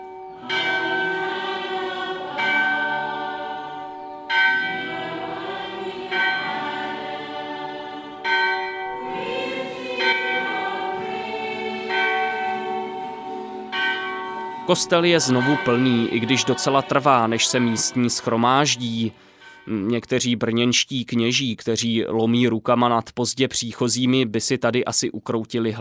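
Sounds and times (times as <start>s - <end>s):
clapperless church bell struck from the outside during Mass: 0.0s - 7.4s, 8.1s - 20.2s
speech: 14.7s - 25.7s.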